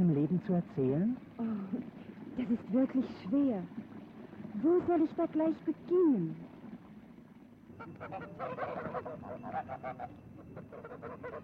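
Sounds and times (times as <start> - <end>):
speech: 0.0 - 3.8, 4.6 - 6.4, 7.9 - 11.4
flock of geese honking: 7.7 - 11.4.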